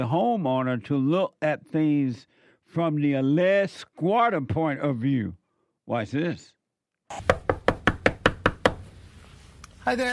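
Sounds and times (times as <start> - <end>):
speech: 0.0 - 7.4, 9.8 - 10.1
firm knocks on a house door: 7.3 - 8.8.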